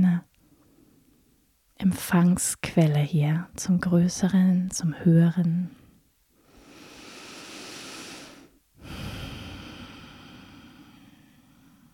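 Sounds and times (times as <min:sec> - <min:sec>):
speech: 0:01.8 - 0:05.8
deep slow breathing during a guided heart-centred meditation: 0:06.4 - 0:11.9.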